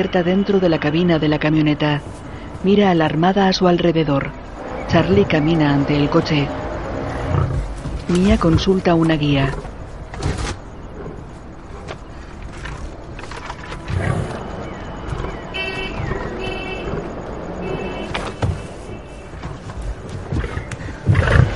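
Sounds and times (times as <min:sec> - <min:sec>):
speech: 0:00.0 - 0:06.6, 0:07.3 - 0:10.4
rumble: 0:00.0 - 0:21.5
white lion roaring: 0:07.0 - 0:07.8, 0:13.6 - 0:18.0, 0:20.2 - 0:21.5.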